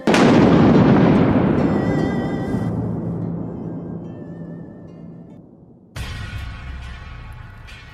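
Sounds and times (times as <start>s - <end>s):
thunder-like booming sound effect: 0.0s - 7.4s
crashing burst: 0.0s - 7.9s.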